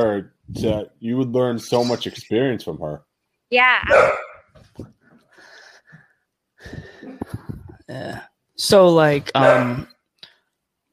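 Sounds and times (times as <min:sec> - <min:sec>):
speech: 0:00.0 - 0:05.0, 0:06.6 - 0:09.9
pet dog barking and yelping: 0:03.8 - 0:04.5, 0:09.4 - 0:09.9.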